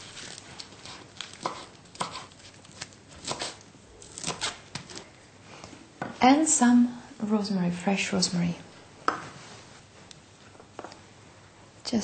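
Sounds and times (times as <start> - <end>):
knife chopping a small handful of fresh spinach: 0.1 - 5.0
speech: 6.2 - 8.7.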